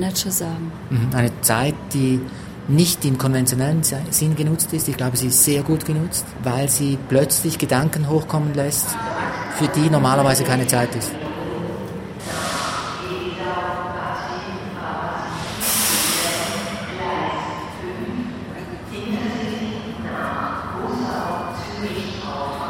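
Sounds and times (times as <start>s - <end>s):
speech: 0.0s - 11.3s
public address announcement in a busy train station: 0.0s - 22.6s
sharp burst of hissing: 12.2s - 13.0s, 15.3s - 16.8s.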